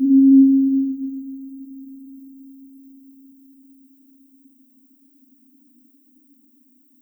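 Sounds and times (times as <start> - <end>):
hum: 0.0 - 2.8.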